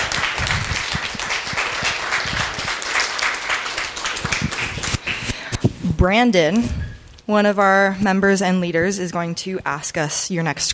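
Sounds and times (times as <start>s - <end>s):
audience applauding: 0.0s - 5.3s
speech: 6.0s - 10.7s.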